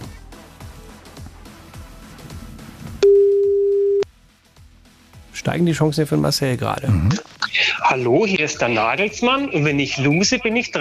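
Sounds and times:
rhythmic music with low pulsing beats: 0:00.0 - 0:03.0, 0:04.1 - 0:10.7
telephone tone of an outgoing call: 0:03.0 - 0:04.0
speech: 0:05.4 - 0:10.7.

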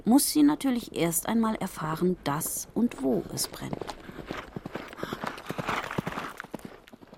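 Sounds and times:
speech: 0:00.0 - 0:04.5
horse hooves clip-clopping at a quick steady pace: 0:02.1 - 0:07.1.

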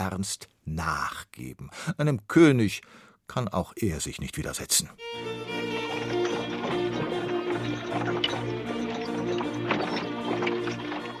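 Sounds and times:
speech: 0:00.0 - 0:06.2
cart wheels rumbling and creaking: 0:05.2 - 0:11.1
horse-drawn carts clip-clopping: 0:05.2 - 0:11.1.

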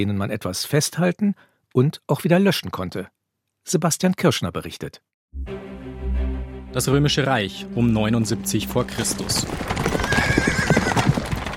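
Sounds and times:
speech: 0:00.0 - 0:05.6, 0:06.8 - 0:10.4
horse hooves trampling ground on a country estate near Pompeii: 0:08.5 - 0:11.5
horse whinnying: 0:09.4 - 0:11.5.

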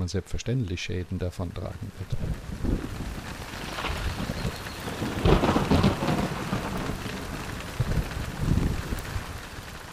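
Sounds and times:
heavy rain pattering: 0:00.0 - 0:09.9
speech: 0:00.1 - 0:02.8
low thunder rumbling: 0:02.2 - 0:09.9.

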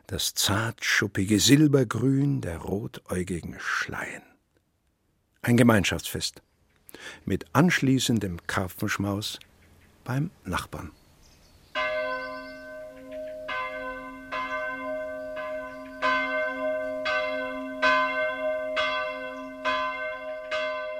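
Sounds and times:
speech: 0:00.1 - 0:04.3, 0:05.4 - 0:11.0
church bells pealing on a Saturday ringing in Sunday: 0:11.8 - 0:20.9.

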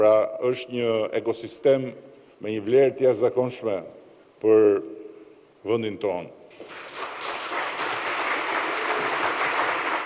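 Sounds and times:
speech: 0:00.0 - 0:05.0, 0:05.6 - 0:06.8
crowd applauding after a speech: 0:06.6 - 0:10.0.

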